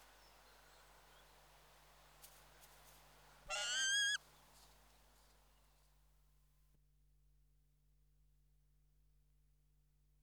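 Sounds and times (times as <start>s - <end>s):
faint hiss: 0.0s - 6.0s
peregrine falcon grating call: 3.5s - 4.2s.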